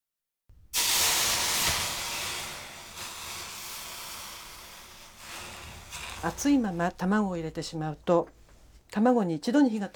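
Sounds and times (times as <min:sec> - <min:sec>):
hot oiled pot hissing on a wet dish cloth: 0:00.5 - 0:07.8
steaming hiss: 0:00.7 - 0:06.8
speech: 0:06.2 - 0:09.9.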